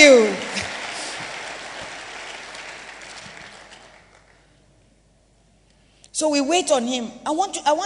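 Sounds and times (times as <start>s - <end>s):
speech: 0.0s - 0.4s, 6.2s - 7.8s
audience clapping: 0.0s - 4.6s.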